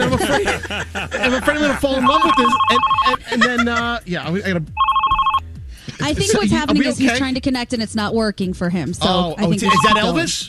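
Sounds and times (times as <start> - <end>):
laughter: 0.0 - 4.6, 5.8 - 7.4
speech: 0.3 - 4.9, 6.0 - 10.4
telephone ringing with bright trilling electronic ring: 2.0 - 3.2, 4.8 - 5.4, 9.6 - 10.2.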